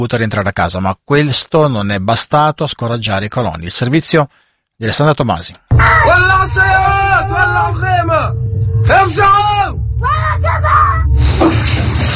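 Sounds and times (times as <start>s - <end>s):
speech: 0.0s - 12.1s
people shouting and screaming during an attack on a village: 5.7s - 8.2s, 8.9s - 11.2s
constant low rumble: 5.7s - 12.1s.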